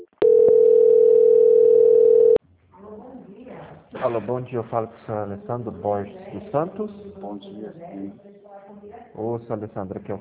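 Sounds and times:
telephone line tone during a call transfer: 0.0s - 2.4s
speech: 4.0s - 10.2s.

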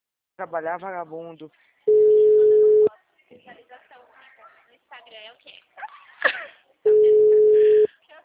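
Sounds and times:
speech: 0.4s - 2.0s
telephone ringback tones of a call ringing on the line: 1.9s - 2.9s, 6.9s - 7.9s.

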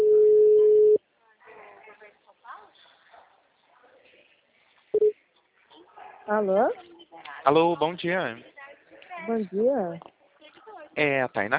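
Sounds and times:
short telephone tone beeps: 0.0s - 1.0s
speech: 6.3s - 8.5s, 9.3s - 10.1s, 11.0s - 11.5s.

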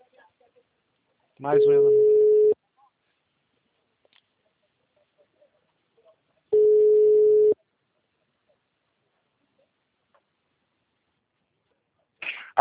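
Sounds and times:
speech: 1.4s - 2.2s
telephone busy tone after a dropped call: 1.8s - 2.6s, 6.6s - 7.6s.

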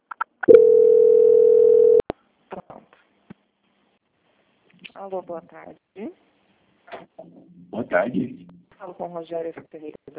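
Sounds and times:
telephone line tone during a call transfer: 0.4s - 2.0s
speech: 5.0s - 6.2s, 7.7s - 10.1s.

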